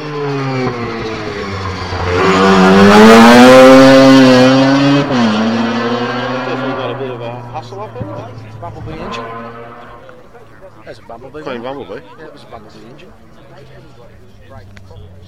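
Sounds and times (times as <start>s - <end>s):
RX4 coupe car engine revving through gear changes: 0.0s - 10.2s
speech: 11.2s - 15.2s.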